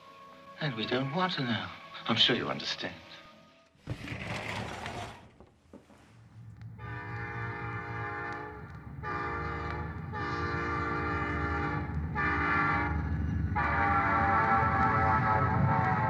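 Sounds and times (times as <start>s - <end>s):
speech: 0.6s - 3.2s
southbound train rumbling along the rails: 5.9s - 16.0s.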